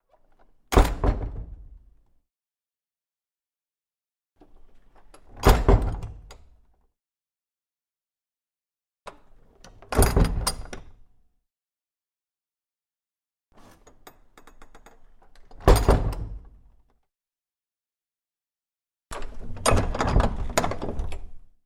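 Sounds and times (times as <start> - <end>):
small wooden door with latch: 0.2 - 2.0, 4.4 - 6.8, 9.1 - 11.3, 13.6 - 17.0, 19.1 - 21.6.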